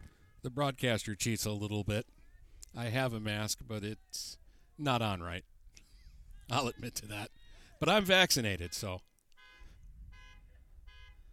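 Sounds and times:
speech: 0.4 - 5.5, 6.5 - 9.1
car alarm blaring in repeated electronic bursts: 9.4 - 11.3.

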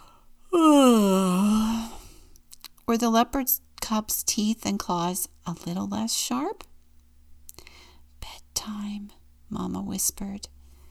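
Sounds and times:
person yawning: 0.5 - 2.1
speech: 2.9 - 6.7, 8.6 - 10.6.

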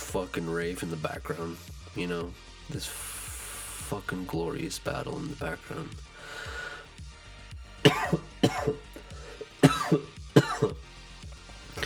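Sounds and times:
speech: 0.1 - 3.2, 3.9 - 6.5, 7.9 - 8.9, 9.9 - 10.8
wheezing: 6.1 - 7.0, 7.7 - 10.8, 11.7 - 11.8
harsh raspy coughing fit: 7.9 - 10.8.

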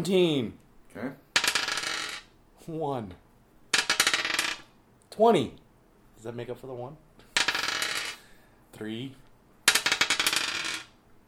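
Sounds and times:
speech: 0.0 - 1.2, 2.7 - 3.2, 5.2 - 5.6, 6.2 - 7.0, 8.8 - 9.2
dice rolling on a table during a tabletop role-playing game: 1.3 - 2.3, 3.7 - 4.7, 7.3 - 8.2, 9.6 - 11.0.

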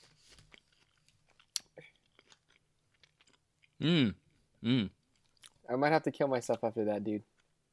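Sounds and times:
chewing of plain Italian bread: 0.0 - 4.4, 5.0 - 5.6
soft moist mouth clicks and smacks: 0.8 - 5.7
loud drawn-out vocal sounds: 3.8 - 5.0
speech: 3.8 - 5.0, 5.7 - 7.3.

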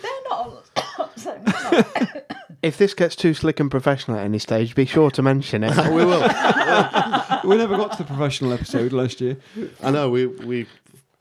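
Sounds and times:
speech: 0.4 - 10.8
person coughing: 0.8 - 2.6
laughter: 1.1 - 2.3, 5.7 - 9.4.

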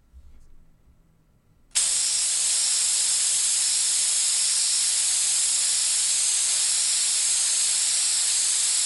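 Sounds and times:
aerosol spray can spraying: 1.8 - 8.8.

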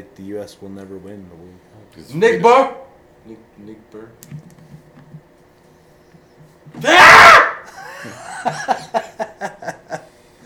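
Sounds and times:
speech: 0.0 - 4.8, 8.0 - 9.5
person yelling while flailing at moths: 6.8 - 7.7
laughter: 7.7 - 10.1.

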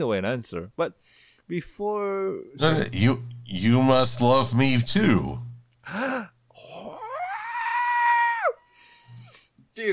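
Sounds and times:
speech: 0.0 - 6.3, 9.8 - 9.9
person screeching loudly: 6.6 - 9.3.

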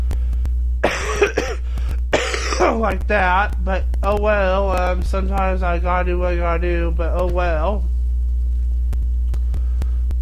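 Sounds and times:
steady low electrical hum: 0.0 - 10.2
person clearing their throat: 0.8 - 1.6, 2.2 - 2.8
person coughing: 0.8 - 2.8
speech: 2.8 - 8.0.

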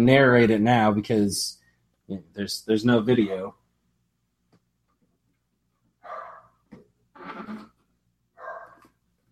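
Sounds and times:
speech: 0.0 - 3.6
dog barking: 6.0 - 6.6, 8.4 - 8.8.

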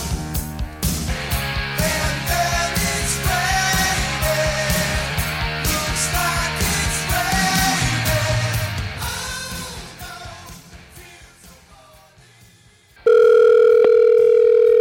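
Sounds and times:
music: 0.0 - 13.1
steady telephone dial tone while placing a call: 13.1 - 14.8.

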